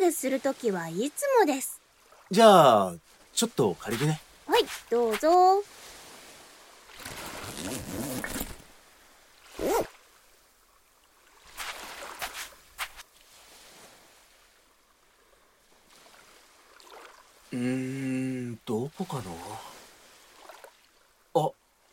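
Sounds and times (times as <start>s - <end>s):
speech: 0.1s - 5.8s, 17.5s - 19.7s, 21.3s - 21.6s
rustling and handling noises: 3.9s - 5.5s, 7.0s - 8.7s
backpack zipper pulled open to take out binoculars: 7.0s - 8.7s, 9.6s - 9.9s.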